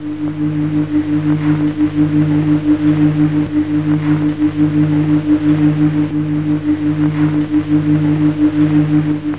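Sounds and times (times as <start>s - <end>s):
old hum: 0.0s - 9.3s.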